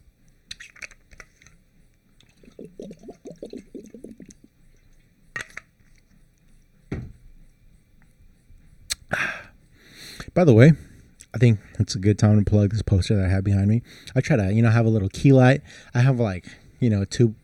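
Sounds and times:
bottle being opened and set down with clicks and clatter: 0.5 - 1.6, 2.2 - 6.0
person gulping water during a water break: 2.2 - 6.1
speech: 10.4 - 17.4.

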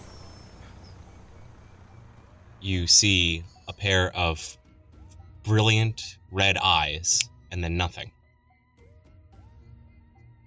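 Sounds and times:
bus air brakes hissing and squealing: 0.0 - 1.6
bus engine drone as it pulls up: 0.0 - 3.9
speech: 2.6 - 4.6, 5.4 - 8.2.

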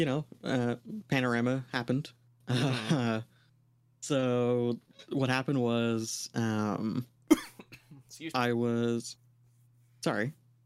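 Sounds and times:
speech: 0.0 - 3.3, 4.0 - 7.5, 8.1 - 9.2, 10.0 - 10.4
single short sharp cough: 7.3 - 8.0.

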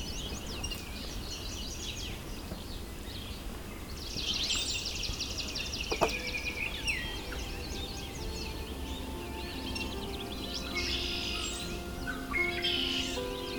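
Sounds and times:
busy outdoor bird chorus: 0.0 - 13.5
red-winged blackbird singing: 0.0 - 13.5
steady hum: 5.2 - 13.5.

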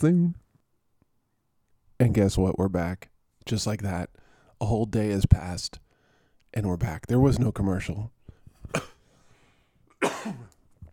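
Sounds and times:
speech: 0.0 - 0.4, 2.0 - 5.8, 6.5 - 8.9, 10.0 - 10.4
person coughing harshly: 8.6 - 9.0, 9.9 - 10.6.

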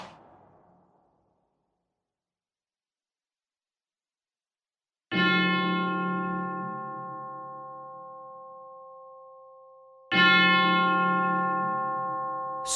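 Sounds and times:
church bell tolling: 5.1 - 12.7.

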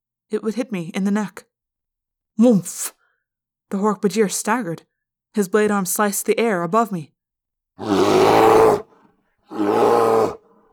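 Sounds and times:
speech: 0.3 - 1.5, 2.4 - 3.0, 3.7 - 7.2, 7.8 - 8.8
rumbling creature roars: 7.8 - 8.9, 9.5 - 10.4.

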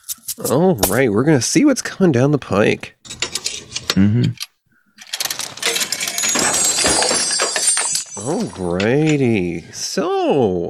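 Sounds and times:
speech: 0.4 - 3.0, 4.0 - 4.4, 8.2 - 10.6
bag of coins being handled: 5.0 - 9.2.

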